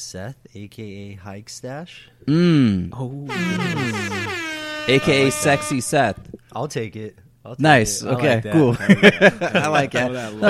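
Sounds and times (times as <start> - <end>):
speech: 0.0 - 10.4
loud blaring brassy air horn blasts: 3.3 - 6.2
laughter: 8.6 - 10.4.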